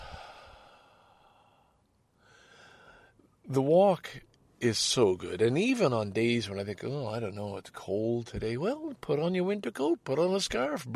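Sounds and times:
deep breath in: 0:00.0 - 0:03.2
speech: 0:03.5 - 0:10.9.

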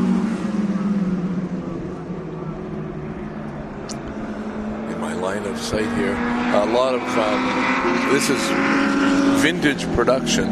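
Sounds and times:
vintage race car engine roaring: 0:00.0 - 0:10.5
speech: 0:05.4 - 0:10.5.

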